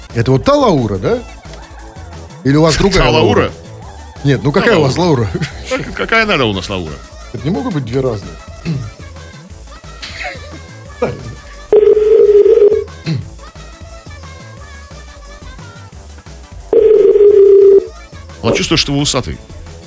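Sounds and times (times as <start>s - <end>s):
speech: 0.1s - 1.4s, 2.4s - 3.6s, 4.2s - 8.9s, 11.0s - 11.3s, 18.4s - 19.5s
laughter: 1.4s - 2.4s, 3.0s - 6.3s, 10.0s - 11.5s
telephone tones from an outgoing call being dialed: 11.8s - 13.0s, 16.7s - 17.9s.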